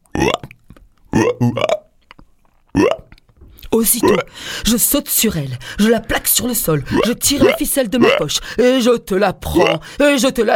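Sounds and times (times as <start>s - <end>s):
voice imitating a big green frog croaking with hiccups: 0.0s - 2.0s, 2.7s - 4.4s, 6.8s - 8.3s, 9.4s - 9.9s
speech: 1.4s - 1.8s, 3.8s - 10.5s.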